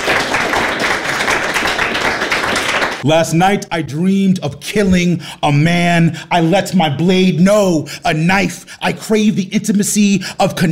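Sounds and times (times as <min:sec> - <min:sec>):
crowd applauding: 0:00.0 - 0:03.0
speech: 0:03.0 - 0:10.7.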